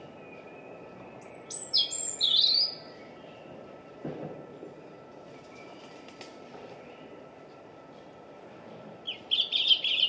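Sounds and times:
European robin singing whistled notes: 0:00.0 - 0:03.6, 0:09.0 - 0:10.0
steady background noise: 0:00.0 - 0:10.0.

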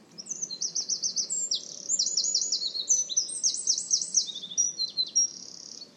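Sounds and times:
bird giving rapid high buzzy chittering phrases: 0:00.2 - 0:05.8.

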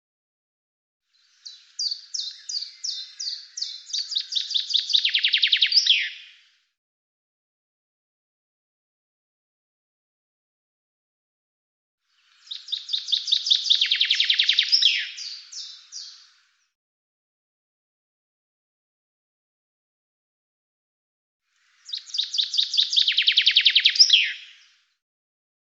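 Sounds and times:
bird song of fast descending trill of sharp notes: 0:01.1 - 0:06.4, 0:12.1 - 0:16.8, 0:21.6 - 0:25.0.

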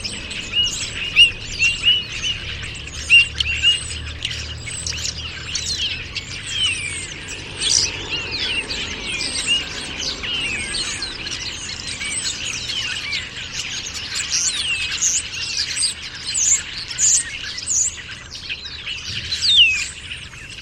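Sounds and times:
dense chorus of many birds chirping and trilling: 0:00.0 - 0:20.6.

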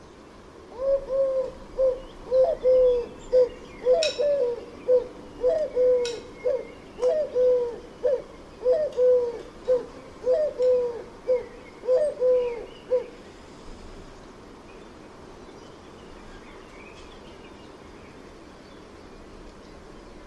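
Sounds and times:
faint background noise: 0:00.0 - 0:20.2
bird calling with mellow cooing notes: 0:00.7 - 0:13.2.

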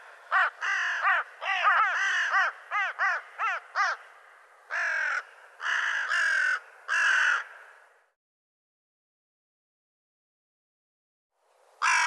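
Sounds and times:
bird calling: 0:00.0 - 0:07.8, 0:11.8 - 0:12.0.

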